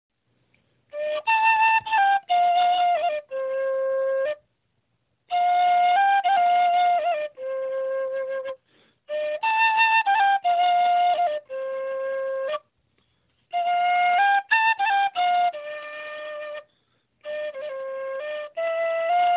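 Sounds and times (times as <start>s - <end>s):
zen flute: 0.8s - 19.3s.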